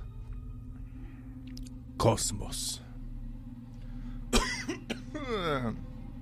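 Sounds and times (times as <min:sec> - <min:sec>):
steady low hum: 0:00.0 - 0:06.2
speech: 0:02.0 - 0:02.8, 0:05.3 - 0:05.9
person coughing: 0:04.3 - 0:05.7.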